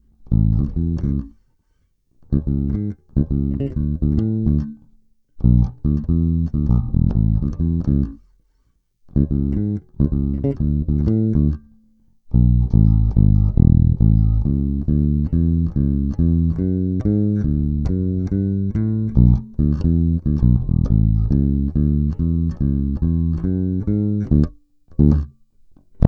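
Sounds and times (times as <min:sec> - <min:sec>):
bass with black nylon strings: 0:00.0 - 0:01.4, 0:02.3 - 0:04.8, 0:05.4 - 0:08.2, 0:09.1 - 0:26.0.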